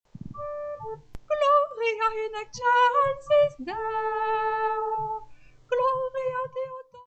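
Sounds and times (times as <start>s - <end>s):
soprano singing: 0.4s - 7.0s.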